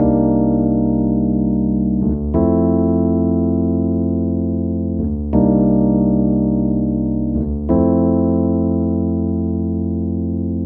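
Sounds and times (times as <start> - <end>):
chill Rhodes electric piano chords Ebm7 Fm7: 0.0 - 10.6.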